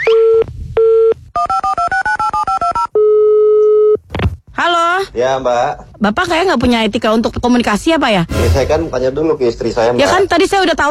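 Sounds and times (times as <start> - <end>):
sustained telephone dial tone: 0.0 - 4.0
telephone keypad dual-pitched beeps: 0.0 - 4.0
speech: 5.2 - 10.8.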